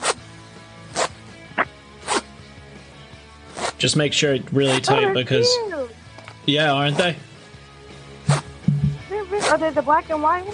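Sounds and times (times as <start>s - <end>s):
zipper being pulled closed on a mailbag: 0.9s - 1.2s, 2.0s - 2.3s, 3.5s - 3.8s, 4.6s - 5.0s, 8.3s - 8.5s, 9.2s - 9.7s
speech: 3.8s - 5.8s, 6.4s - 7.3s, 9.6s - 10.5s.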